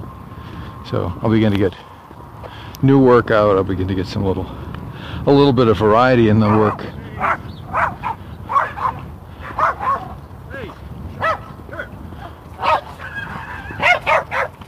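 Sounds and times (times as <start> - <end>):
speech: 0.8 - 1.9, 2.8 - 7.5
dog barking: 6.4 - 10.2, 11.2 - 11.9, 12.6 - 14.6.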